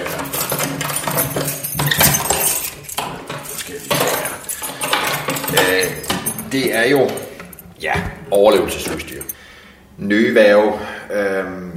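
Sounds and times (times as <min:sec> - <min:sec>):
heavy bunch of keys with a very large key jingling: 0:00.0 - 0:09.4
speech: 0:06.5 - 0:07.2, 0:07.8 - 0:09.4, 0:10.0 - 0:11.7.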